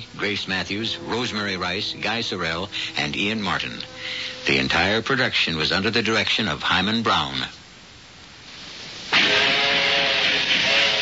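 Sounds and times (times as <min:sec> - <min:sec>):
early steam locomotive hissing steam: 0:00.0 - 0:05.4, 0:08.5 - 0:11.0
speech: 0:00.0 - 0:07.6.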